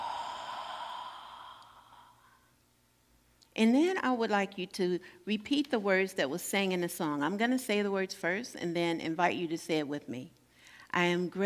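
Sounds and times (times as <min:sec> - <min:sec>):
deep breath taken during a guided prayer: 0:00.0 - 0:02.6
speech: 0:03.6 - 0:11.4.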